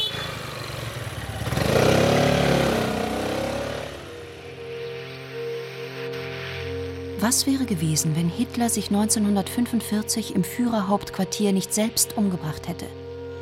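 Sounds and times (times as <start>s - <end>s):
three-wheeled scooter engine revving and pulling away: 0.0s - 5.1s
speech: 7.2s - 13.0s.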